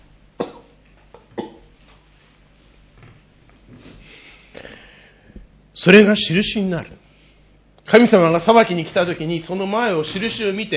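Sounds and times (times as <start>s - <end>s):
person coughing to clear a tickle in the throat: 0.4s - 1.7s
speech: 5.8s - 7.0s, 7.9s - 10.7s.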